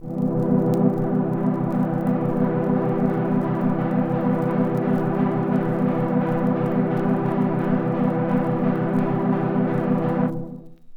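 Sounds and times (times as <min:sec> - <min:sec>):
floating vinyl synthesizer chord: 0:00.0 - 0:10.6.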